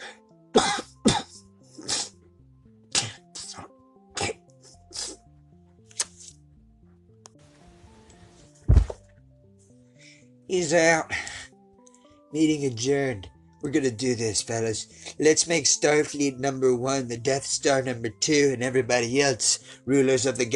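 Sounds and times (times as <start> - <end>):
person coughing in sharp forceful bursts: 0.5 - 2.2, 2.9 - 5.2
speech: 10.5 - 11.2, 12.3 - 20.5.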